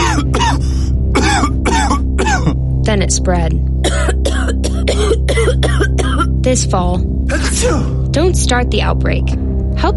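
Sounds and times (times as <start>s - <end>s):
person coughing: 0.0s - 2.7s, 3.8s - 6.4s, 7.3s - 8.0s
speech: 3.0s - 4.2s, 6.5s - 9.9s.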